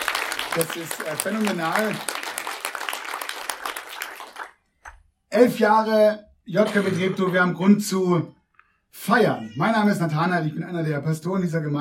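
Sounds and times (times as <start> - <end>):
crowd clapping for a band at a celebratory church service: 0.0 - 4.7
speech: 0.6 - 2.2, 5.4 - 11.7.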